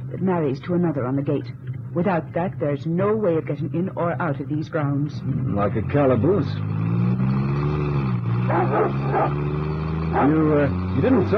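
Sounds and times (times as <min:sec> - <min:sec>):
low engine-like hum: 0:00.0 - 0:11.3
speech: 0:00.2 - 0:06.9, 0:08.5 - 0:11.3
guard dogs barking: 0:08.4 - 0:10.7.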